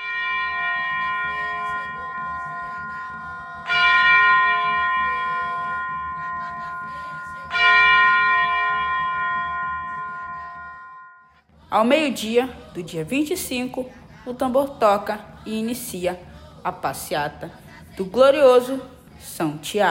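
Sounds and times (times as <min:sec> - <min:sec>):
church bell ringing: 0:00.0 - 0:11.4
low hum: 0:00.8 - 0:19.8
speech: 0:11.8 - 0:19.8.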